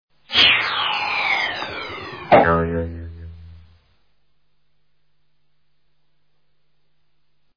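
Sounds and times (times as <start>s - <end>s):
cartoon comedy archery arrow landing: 0.3s - 3.7s.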